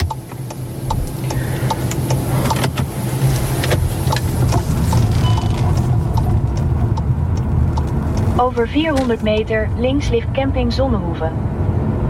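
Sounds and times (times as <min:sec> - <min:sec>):
light regular ticking: 0:00.0 - 0:09.6
car driving along a country road through farmland toward a campsite: 0:00.0 - 0:12.0
speech: 0:08.5 - 0:11.5.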